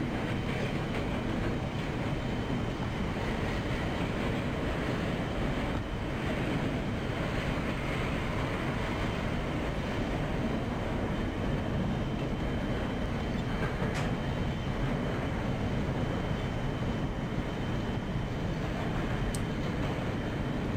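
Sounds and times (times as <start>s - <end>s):
synthesized simulated train rumbling along tracks: 0.0s - 20.7s.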